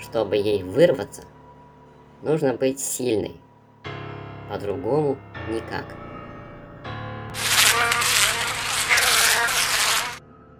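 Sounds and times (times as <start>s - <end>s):
speech: 0.1s - 1.4s, 2.2s - 6.0s
fly buzzing frantically while struggling to break free: 7.3s - 10.2s.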